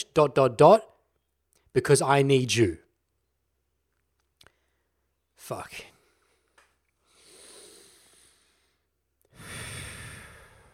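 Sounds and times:
speech: 0.0s - 0.9s, 1.8s - 2.8s, 5.4s - 5.9s
deep diaphragmatic breathing: 5.9s - 10.7s.

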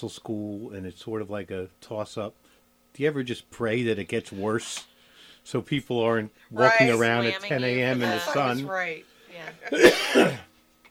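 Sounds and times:
speech: 0.0s - 10.5s
person coughing with rough throat-clearing: 9.7s - 10.5s.

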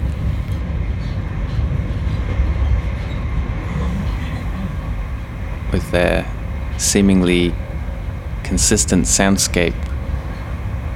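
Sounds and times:
train carriage in motion rumbling and rattling, recorded from inside: 0.0s - 10.9s
speech: 5.8s - 7.7s, 8.5s - 9.9s.

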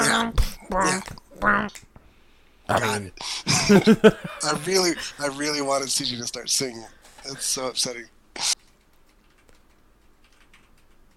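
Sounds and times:
speech: 0.7s - 1.9s, 2.7s - 8.6s
laughter: 3.5s - 5.4s
computer keyboard typing: 8.6s - 11.1s.

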